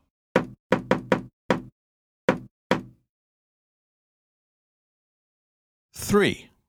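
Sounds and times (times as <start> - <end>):
sharp knuckle raps on a wooden door: 0.4 - 1.7, 2.3 - 3.0
speech: 6.0 - 6.5.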